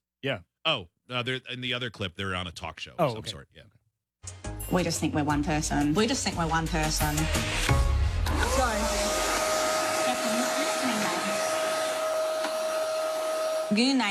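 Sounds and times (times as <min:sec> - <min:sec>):
speech: 0:00.2 - 0:08.7, 0:13.7 - 0:14.1
person imitating a vacuum cleaner: 0:08.3 - 0:14.1.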